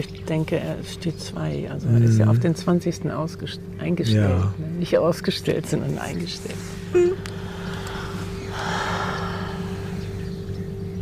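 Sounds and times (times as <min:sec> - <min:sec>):
speech: 0:00.0 - 0:07.4
steady low electrical hum: 0:00.0 - 0:11.0
heavy puffing breath through the nose: 0:06.5 - 0:10.5.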